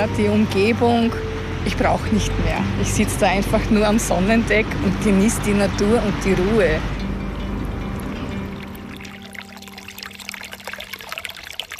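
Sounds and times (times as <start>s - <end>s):
speech: 0.0s - 7.0s
small brook trickling over stones by the shore of lake Simsee: 7.9s - 11.7s.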